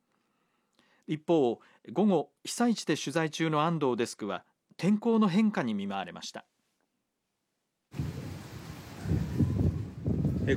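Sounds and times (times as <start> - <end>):
speech: 1.1 - 6.5
deep rumbling thunder: 8.0 - 10.5
heavy rain from a passing shower: 8.0 - 10.5.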